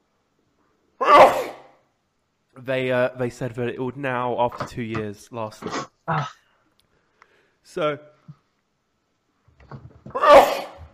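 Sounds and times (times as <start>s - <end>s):
sneeze: 1.0s - 1.8s, 10.2s - 10.8s
speech: 2.6s - 6.4s, 7.6s - 8.4s, 9.7s - 10.3s.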